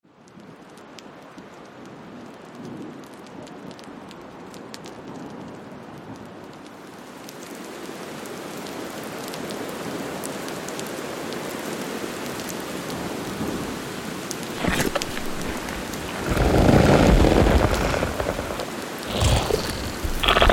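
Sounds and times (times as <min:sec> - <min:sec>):
alien planet ambience: 0:14.6 - 0:20.5
alien planet sound effects: 0:17.6 - 0:20.5.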